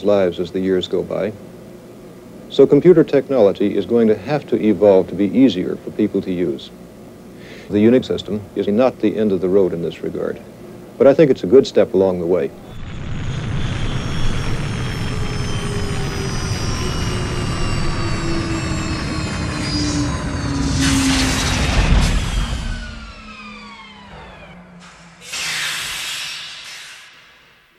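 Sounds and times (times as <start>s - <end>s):
speech: 0.0s - 1.6s, 2.5s - 6.8s, 7.7s - 12.8s
time capsule landing with engine-like roar and downward-gliding whining tones: 12.5s - 25.4s
hissing burst: 12.6s - 27.7s.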